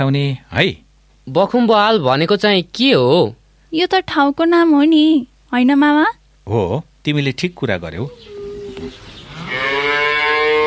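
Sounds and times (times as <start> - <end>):
speech: 0.0 - 9.0
cow mooing from hunger: 8.1 - 10.6.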